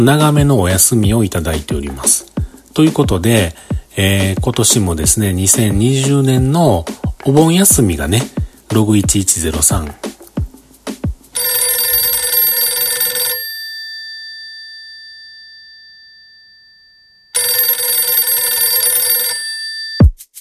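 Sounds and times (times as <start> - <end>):
speech: 0.0 - 10.2
telephone ringing: 11.4 - 20.0.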